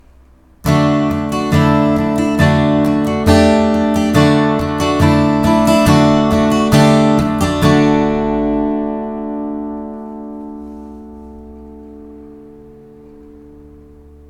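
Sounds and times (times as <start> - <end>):
suspended chord: 0.7 - 14.2.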